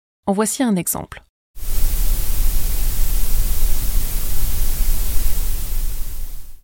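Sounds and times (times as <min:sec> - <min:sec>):
speech: 0:00.3 - 0:01.3
loud broadband grey noise hiss: 0:01.6 - 0:06.6.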